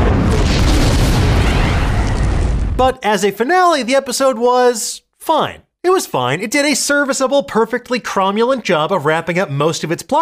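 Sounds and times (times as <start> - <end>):
dense rumbling debris noise: 0.0 - 2.9
booming crash of a spaceship slamming into a secret base: 0.0 - 3.0
speech: 2.8 - 10.1.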